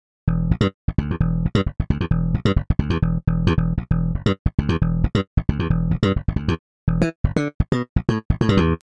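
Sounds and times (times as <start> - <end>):
bass guitar pulled notes: 0.3 - 8.8.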